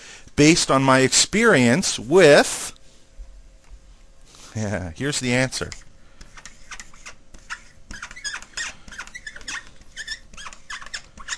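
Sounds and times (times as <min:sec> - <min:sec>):
speech: 0:00.4 - 0:02.7, 0:04.6 - 0:05.9
marker squeaking on a board: 0:05.6 - 0:11.3.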